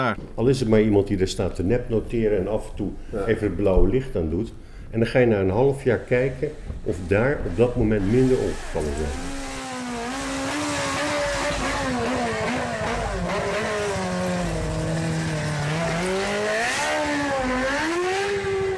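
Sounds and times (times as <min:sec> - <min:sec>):
speech: 0:00.0 - 0:09.4
motorcycle engine revving: 0:05.9 - 0:18.7.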